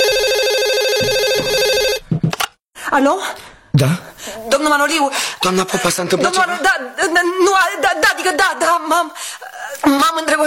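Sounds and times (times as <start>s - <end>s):
home telephone ringing late at night: 0.0s - 2.0s
speech: 2.9s - 10.4s.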